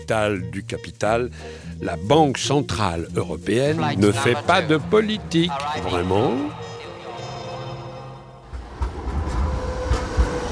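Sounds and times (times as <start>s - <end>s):
speech: 0.0s - 6.6s
low steady train rumble at a railway station in Frankfurt: 8.4s - 10.5s.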